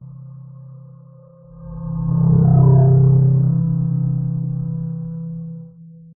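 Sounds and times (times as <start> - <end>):
sci-fi abstract whoosh fly-by with glowing warm flutter, medium speed: 1.5 - 5.6.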